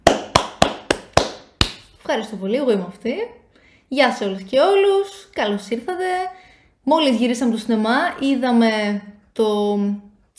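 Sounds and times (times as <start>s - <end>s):
single pair of hands clapping: 0.0s - 2.0s
speech: 2.1s - 10.3s.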